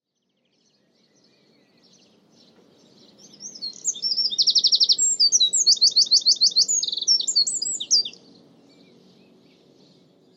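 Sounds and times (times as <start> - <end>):
bird singing high chirps, trills and buzzy notes: 0.1 - 10.3
low background hum: 0.3 - 10.3.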